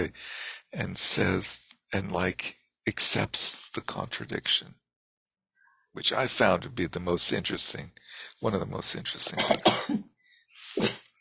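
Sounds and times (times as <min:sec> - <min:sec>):
speech: 0:00.0 - 0:04.8, 0:06.0 - 0:10.1
breathy intake before a sneeze: 0:00.1 - 0:00.8, 0:08.0 - 0:08.4
person sneezing: 0:10.6 - 0:11.0.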